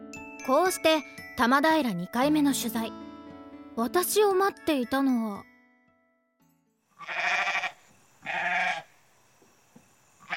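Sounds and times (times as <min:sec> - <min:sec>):
speech: 0:00.5 - 0:03.0, 0:03.8 - 0:05.5
goats bleating in a grassy vacant lot: 0:07.0 - 0:08.9.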